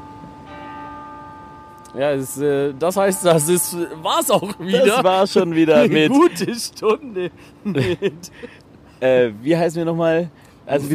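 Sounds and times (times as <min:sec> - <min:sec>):
church bell ringing: 0:00.0 - 0:06.4
speech: 0:01.9 - 0:10.9
laughter: 0:04.2 - 0:08.6.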